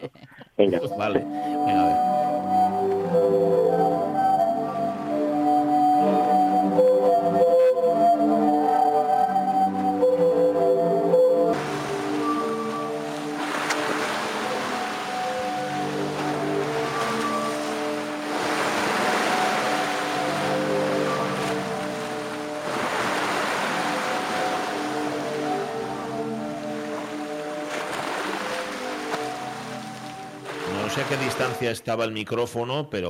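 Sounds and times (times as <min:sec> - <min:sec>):
speech: 0:00.0 - 0:02.2, 0:31.4 - 0:33.0
sea waves: 0:00.9 - 0:31.8.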